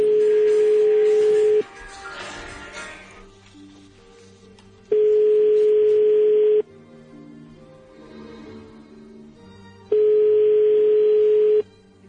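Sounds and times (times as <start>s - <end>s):
telephone ringback tone: 0.0s - 1.6s, 4.9s - 6.7s, 9.9s - 11.7s
quiet music: 0.0s - 12.0s.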